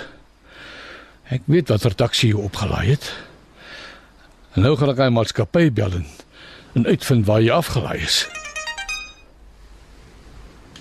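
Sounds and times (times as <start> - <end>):
speech: 1.3 - 3.3, 4.6 - 6.2, 6.8 - 8.4
phone text message alert chime of rapidly pulsing electronic notes: 8.2 - 9.3.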